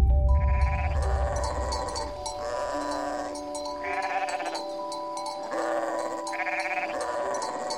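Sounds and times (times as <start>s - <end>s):
low rumble: 0.0s - 2.6s
several sheep bleating: 0.4s - 4.6s, 5.4s - 7.7s.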